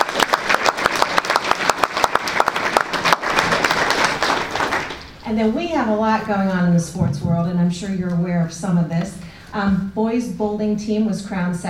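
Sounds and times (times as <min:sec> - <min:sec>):
group of people applauding: 0:00.0 - 0:05.2
speech: 0:05.3 - 0:11.6.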